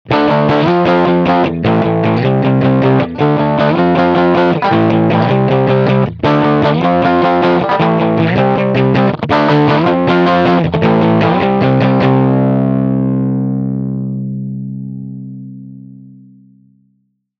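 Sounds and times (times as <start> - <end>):
light fuzz riff: 0.1 - 16.8.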